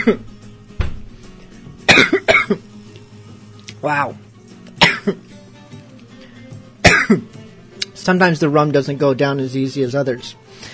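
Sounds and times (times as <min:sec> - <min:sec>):
loud cough: 0:00.0 - 0:00.2, 0:01.9 - 0:02.6, 0:04.8 - 0:05.2, 0:06.8 - 0:07.3
speech: 0:00.0 - 0:00.3, 0:03.8 - 0:04.2, 0:05.0 - 0:05.2, 0:07.1 - 0:07.4, 0:08.0 - 0:10.4.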